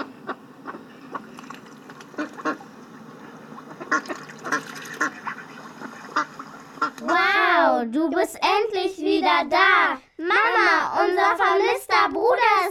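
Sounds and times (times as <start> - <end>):
ducks quacking at a lake: 0.0 - 7.2
speech: 7.9 - 12.6.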